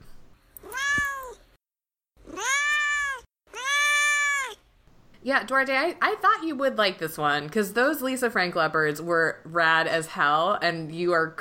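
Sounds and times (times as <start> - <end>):
domestic cat meowing: 0.6 - 1.4, 2.2 - 4.6
speech: 5.2 - 11.3.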